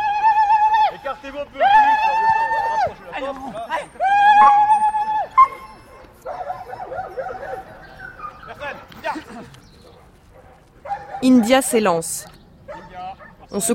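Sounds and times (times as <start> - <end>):
voices murmuring faintly: 0.0 - 13.7
speech: 1.3 - 1.7, 11.2 - 12.3, 13.5 - 13.7
dog barking and yelping excitedly: 5.4 - 8.6, 10.4 - 11.6.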